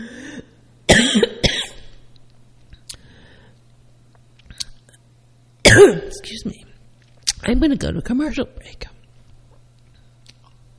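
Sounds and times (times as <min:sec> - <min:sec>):
person coughing harshly: 0:00.0 - 0:01.9, 0:05.6 - 0:06.2
soft throat-clearing rasps: 0:05.7 - 0:06.2
speech: 0:05.8 - 0:06.7, 0:07.4 - 0:08.9.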